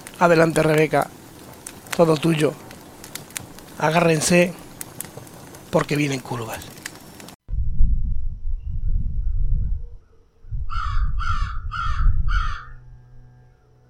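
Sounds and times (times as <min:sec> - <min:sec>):
deep rumbling: 0:00.0 - 0:13.8
speech: 0:00.2 - 0:01.2, 0:02.0 - 0:02.6, 0:03.8 - 0:04.6, 0:05.7 - 0:06.8
crow cawing: 0:10.7 - 0:12.8.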